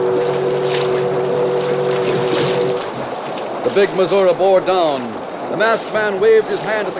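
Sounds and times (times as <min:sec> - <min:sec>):
deep riverboat whistle on a paddle-wheel boat blowing a warning: 0:00.0 - 0:02.8
rough rumble of riverboat engine and water: 0:00.0 - 0:06.9
speech: 0:03.7 - 0:06.9.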